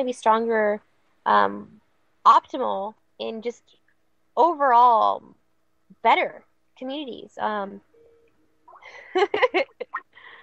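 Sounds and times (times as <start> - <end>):
speech: 0.0 - 3.8, 4.4 - 5.4, 6.0 - 7.9, 8.9 - 10.0
cell phone ringtone for an incoming call: 7.9 - 8.8.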